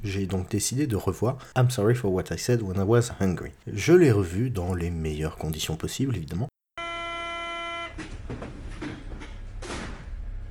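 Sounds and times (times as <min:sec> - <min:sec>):
speech: 0:00.0 - 0:06.5
RER E commuter train horn at a station: 0:06.8 - 0:08.0
RER E commuter train doors sliding and thudding: 0:08.0 - 0:10.5.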